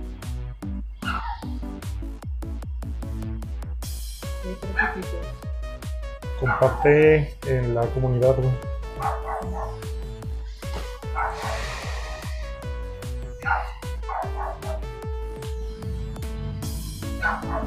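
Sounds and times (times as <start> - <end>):
steady rhythmic thumping: 0.0 - 17.6
small dog barking: 1.0 - 1.5, 4.7 - 5.1, 6.4 - 6.9, 9.0 - 9.8, 11.1 - 11.6, 13.4 - 14.8, 17.2 - 17.6
speech: 4.4 - 5.4, 6.4 - 9.9.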